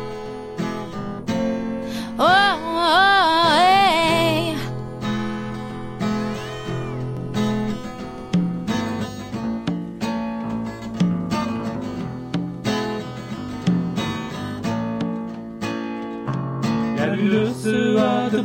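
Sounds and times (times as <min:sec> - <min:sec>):
steady music: 0:00.0 - 0:18.4
cats meowing: 0:06.0 - 0:08.4.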